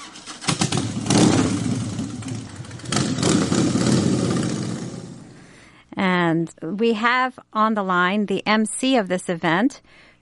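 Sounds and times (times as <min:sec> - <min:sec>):
motorcycle engine starting and revving at a bike night street event: 0:00.0 - 0:05.5
speech: 0:06.3 - 0:10.1.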